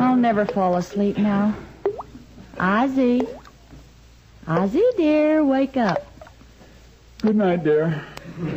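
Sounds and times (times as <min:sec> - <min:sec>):
speech: 0:00.2 - 0:01.7, 0:02.6 - 0:03.4, 0:04.5 - 0:06.1, 0:07.2 - 0:08.5
bathroom faucet dripping: 0:01.8 - 0:02.2, 0:03.1 - 0:03.6, 0:05.8 - 0:06.4.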